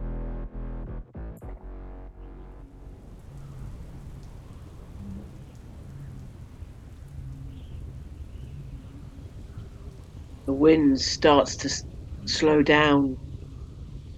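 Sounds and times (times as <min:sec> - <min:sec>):
deep rumble of thunder: 0:02.2 - 0:14.1
steady dense rain pattering on a surface: 0:02.2 - 0:14.1
speech: 0:10.5 - 0:13.3.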